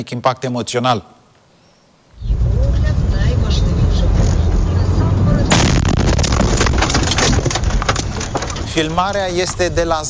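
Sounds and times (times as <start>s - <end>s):
speech: 0.0s - 1.2s, 8.8s - 10.0s
sustained roaring rumble and harsh crackling after drone blast: 2.2s - 10.0s
kamikaze drone strike explosion beside a car in Zaporizhzhia: 5.5s - 8.0s.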